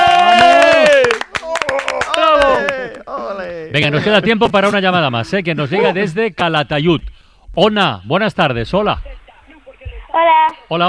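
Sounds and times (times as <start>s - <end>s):
audience applause with sharp rapid claps: 0.0s - 3.0s
loud whooping cheers from a small group: 0.0s - 3.0s
speech: 3.8s - 9.2s, 10.1s - 10.8s.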